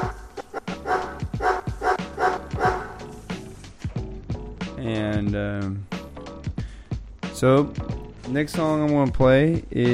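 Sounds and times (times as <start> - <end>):
dog barking: 0.0 - 3.0
speech: 4.8 - 5.9, 7.4 - 9.9.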